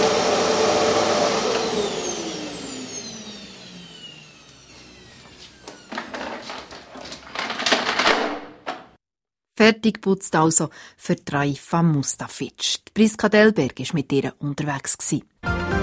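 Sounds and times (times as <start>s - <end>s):
vacuum cleaner running and switched off: 0.0s - 7.4s
clicks and clunks of handling: 5.7s - 9.0s
speech: 9.6s - 15.7s.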